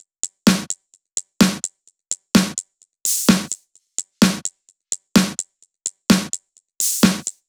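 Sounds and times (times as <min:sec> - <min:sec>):
big beat drum kit: 0:00.5 - 0:00.7, 0:01.4 - 0:01.7, 0:02.4 - 0:03.6, 0:04.2 - 0:04.5, 0:05.2 - 0:05.4, 0:06.1 - 0:07.3.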